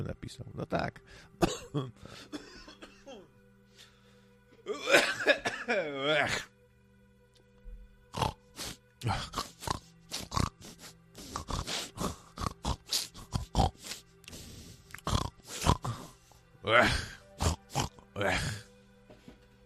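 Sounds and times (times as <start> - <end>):
speech: 0.0 - 2.5, 4.7 - 6.5, 9.0 - 9.4, 16.7 - 17.1
person grunting and snorting like a pig: 4.7 - 6.5, 8.2 - 18.7.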